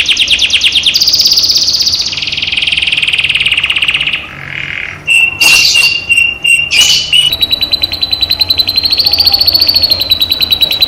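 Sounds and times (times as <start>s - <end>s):
caged canary singing rapid trills: 0.0s - 10.8s.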